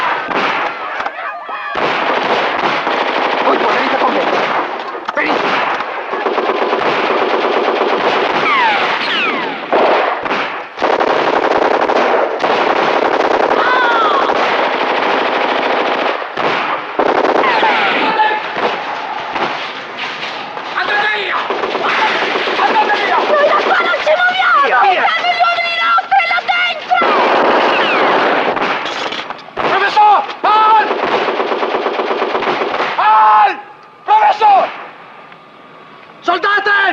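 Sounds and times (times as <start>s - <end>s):
heavy machine-gun and rifle fire during street fighting: 0.0s - 1.0s, 1.8s - 25.4s, 26.9s - 33.0s
voices shouting: 0.0s - 9.8s, 13.4s - 14.5s, 17.1s - 28.6s, 29.6s - 31.0s, 33.0s - 34.8s.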